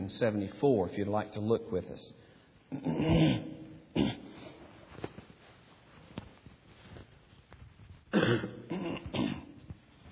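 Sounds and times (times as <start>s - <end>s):
speech: 0.1s - 3.6s
preacher on a lapel mic clearing his throat: 2.7s - 4.5s, 8.1s - 9.7s.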